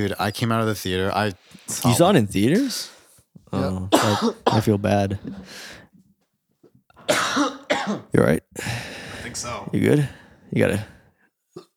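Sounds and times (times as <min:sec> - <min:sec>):
speech: 0:00.0 - 0:05.8, 0:07.1 - 0:11.0
person coughing: 0:03.9 - 0:04.7, 0:07.0 - 0:08.1
faint breathing: 0:05.2 - 0:06.0, 0:08.6 - 0:09.4, 0:10.0 - 0:11.3.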